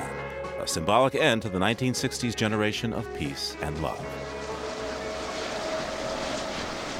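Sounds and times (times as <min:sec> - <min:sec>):
speech: 0:00.6 - 0:04.4
wind turbines whooshing on an exposed ridge at Altamont Pass: 0:04.0 - 0:06.9.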